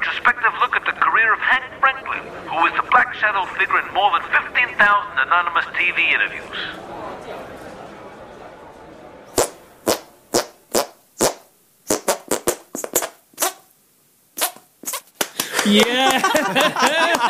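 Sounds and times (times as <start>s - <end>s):
murmur of chatter: 0.0s - 10.3s
speech: 3.2s - 7.4s, 15.6s - 17.2s
squelchy armpit farts playing a tune: 9.3s - 13.7s, 14.4s - 15.2s
laughter: 15.3s - 17.2s.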